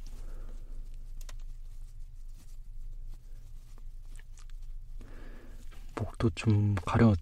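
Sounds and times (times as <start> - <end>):
soft brushing strokes brushing cut hair off the face after a haircut: 0.0 - 4.8
steady low hum: 0.0 - 7.2
speech: 6.0 - 7.2.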